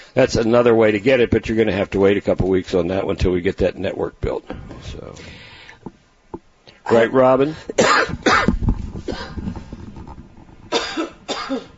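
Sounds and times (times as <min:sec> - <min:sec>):
speech: 0:00.2 - 0:05.5, 0:06.9 - 0:09.6
woman coughing in harsh bursts: 0:07.8 - 0:08.5, 0:10.7 - 0:11.7.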